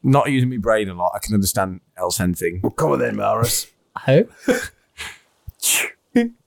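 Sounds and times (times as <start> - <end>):
speech: 0.0 - 6.4
person sneezing: 5.0 - 6.0.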